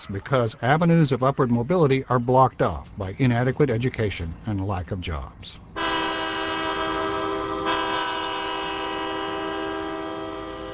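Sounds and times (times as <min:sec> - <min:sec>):
speech: 0:00.0 - 0:05.7
freight train rail cars rumbling: 0:02.1 - 0:10.7
freight train horn blaring: 0:05.8 - 0:10.7.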